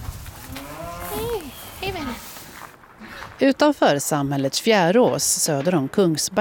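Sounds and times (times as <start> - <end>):
cows mooing: 0.4 - 1.7
speech: 1.8 - 2.3, 3.4 - 6.4.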